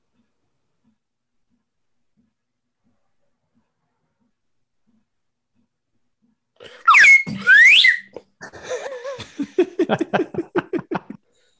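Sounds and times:
slide whistle swooping upward: 6.8 - 8.2
laughter: 8.4 - 11.2.

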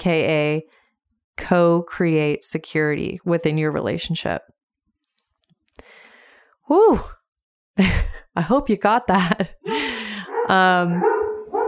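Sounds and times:
speech: 0.0 - 0.8, 1.4 - 4.6, 6.7 - 7.2, 7.8 - 9.9, 10.5 - 11.2
dogs barking: 10.1 - 11.6.

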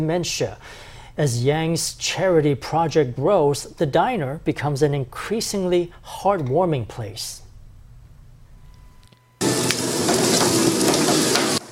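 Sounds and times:
speech: 0.0 - 7.4
turnip cake frying in a busy breakfast diner kitchen: 9.4 - 11.7.

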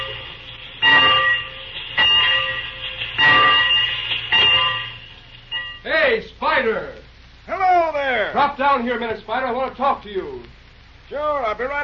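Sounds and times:
steam locomotive bell clanging: 0.0 - 5.9
speech: 6.6 - 7.0, 8.3 - 11.8.

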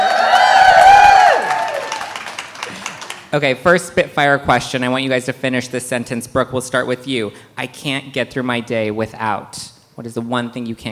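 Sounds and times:
large live festival crowd cheering and whooping in a room: 0.0 - 2.9
some clapping: 0.0 - 3.3
speech: 3.3 - 10.9.

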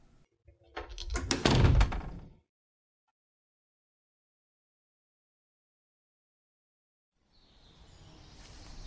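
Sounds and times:
door being pushed shut: 0.8 - 2.4
door thudding against frame: 1.1 - 2.4.

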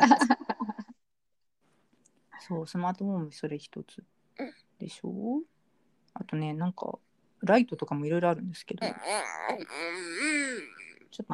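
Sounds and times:
laughter: 0.0 - 0.9
speech: 2.5 - 5.5, 6.2 - 11.3
baby fussing and whimpering: 4.4 - 4.6, 8.8 - 11.0.

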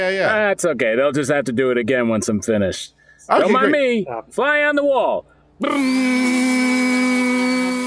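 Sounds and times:
speech: 0.0 - 7.7
power sander sanding windowsills during office maintenance work: 5.6 - 7.8.

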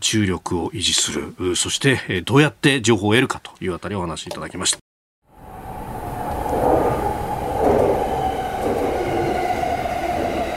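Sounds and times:
speech: 0.0 - 4.8
commuter train rolling along rails heard from inside the car: 5.4 - 10.5
faint high squeal of commuter train wheels: 5.9 - 10.5.

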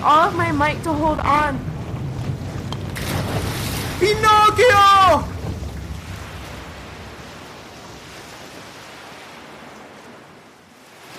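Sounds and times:
speech: 0.0 - 1.7, 4.0 - 5.3
storm waves crashing at sea: 0.0 - 11.1
person shouting: 4.0 - 5.3.

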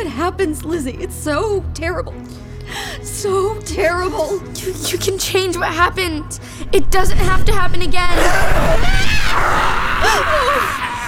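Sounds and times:
speech: 0.2 - 10.8
creature screaming: 8.1 - 11.0.

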